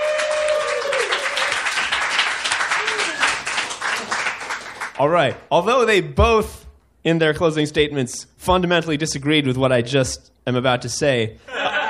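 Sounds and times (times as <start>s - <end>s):
faint whoops from the audience: 0.0s - 1.7s, 2.7s - 3.5s
audience applause after a debate: 0.0s - 5.0s
speech: 5.0s - 11.7s
laughter: 11.5s - 11.8s.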